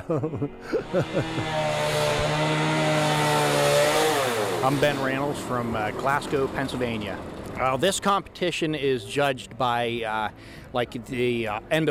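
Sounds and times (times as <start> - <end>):
laughter: 0.0 - 1.6
speech: 0.1 - 2.7, 4.6 - 11.8
chainsaw revving and cutting wood: 0.7 - 7.8.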